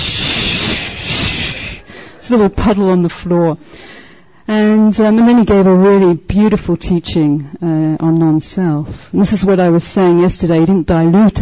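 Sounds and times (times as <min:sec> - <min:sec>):
person hissing with mouth imitating a deflating balloon: 0:00.0 - 0:01.9
speech: 0:02.3 - 0:03.9, 0:04.5 - 0:11.4.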